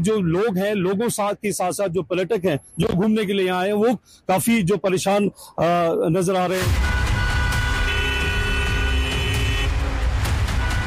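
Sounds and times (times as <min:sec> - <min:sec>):
speech: 0:00.0 - 0:07.0
congested road traffic with idling cars and trucks: 0:00.0 - 0:10.8
sustained car horn blaring: 0:06.6 - 0:10.8
scattered shorter honks: 0:06.8 - 0:09.8.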